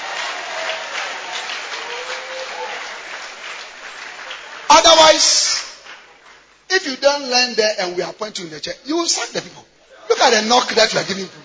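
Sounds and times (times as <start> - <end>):
many hands clapping in a church: 0.0 - 6.5
speech: 5.1 - 5.6, 6.7 - 11.4.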